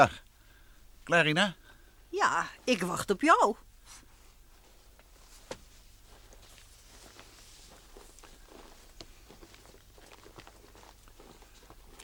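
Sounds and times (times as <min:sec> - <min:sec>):
speech: 0:00.0 - 0:00.2, 0:01.1 - 0:04.0
low steady hum: 0:00.0 - 0:12.0
footsteps crunching through dry snow: 0:03.9 - 0:12.0.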